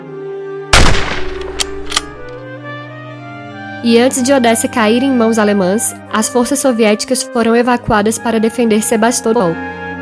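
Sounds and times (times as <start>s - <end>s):
Mosin Nagant bolt-action rifle gunshots: 0.8s - 2.3s
speech: 3.8s - 9.8s.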